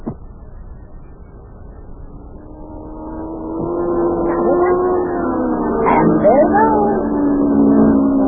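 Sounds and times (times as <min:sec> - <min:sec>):
racing car engine roaring through a town: 0:00.0 - 0:08.2.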